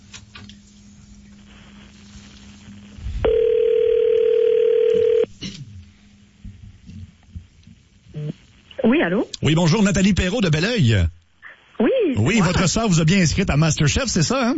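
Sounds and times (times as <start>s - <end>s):
telephone dial tone on a line as a call is placed: 3.3s - 5.3s
speech: 9.0s - 11.2s, 12.2s - 14.5s.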